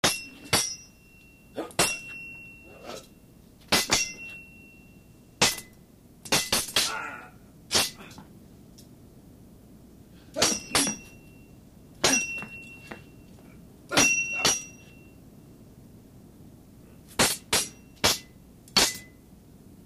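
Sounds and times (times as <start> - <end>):
two people sword fighting with cold weapons: 0.0 - 0.9, 1.6 - 3.1, 3.7 - 4.6, 6.3 - 8.1, 10.4 - 11.2, 12.0 - 13.0, 13.9 - 15.0, 17.2 - 19.1.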